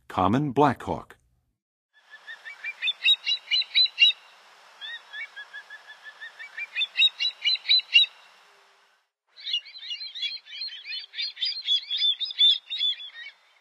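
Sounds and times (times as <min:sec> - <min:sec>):
Common Black-Hawk calling in the Western USA: 0:02.1 - 0:08.2, 0:09.4 - 0:13.5.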